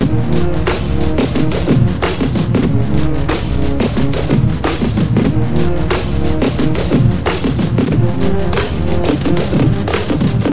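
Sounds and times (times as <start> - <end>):
song: 0.0 - 10.5.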